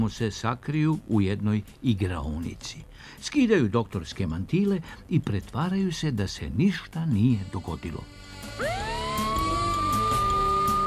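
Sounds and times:
speech: 0.0s - 8.9s
police car sirens wailing: 8.6s - 10.8s.

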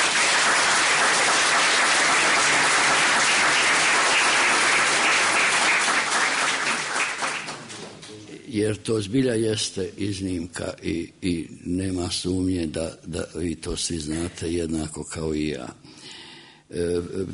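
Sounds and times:
audience applause at a literary evening: 0.0s - 8.0s
speech: 8.5s - 16.0s, 16.7s - 17.3s.

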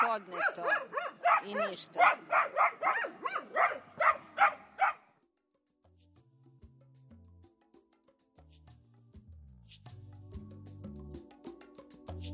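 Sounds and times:
dog barking: 0.0s - 5.1s
speech: 0.2s - 2.6s.

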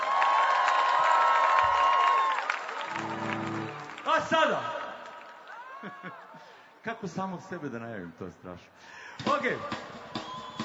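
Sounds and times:
audience applause and cheering at a live concert: 0.0s - 6.5s
speech: 4.2s - 4.7s, 6.8s - 10.0s
high whistle-like tone: 10.1s - 10.6s.

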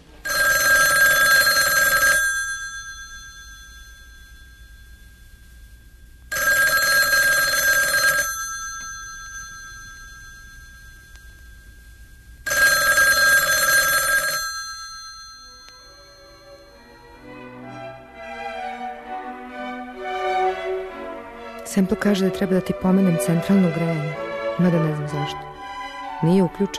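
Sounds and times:
telephone bell ringing: 0.2s - 17.2s
speech: 21.8s - 25.5s, 26.2s - 26.7s.

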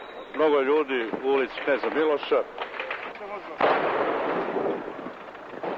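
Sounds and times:
speech: 0.4s - 2.6s, 3.3s - 5.1s
explosion in a city street with rolling rumble: 3.6s - 5.7s.

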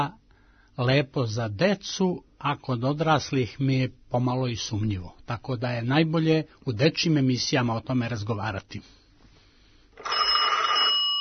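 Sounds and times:
speech: 0.0s - 0.2s, 0.8s - 9.0s
telephone bell ringing: 10.0s - 11.2s.

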